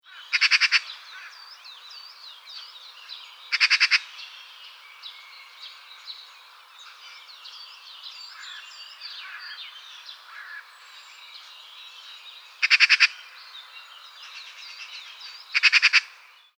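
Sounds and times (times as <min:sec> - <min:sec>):
Pica pica magpie: 0:00.1 - 0:01.5, 0:03.5 - 0:04.6, 0:08.3 - 0:11.0, 0:12.0 - 0:16.4.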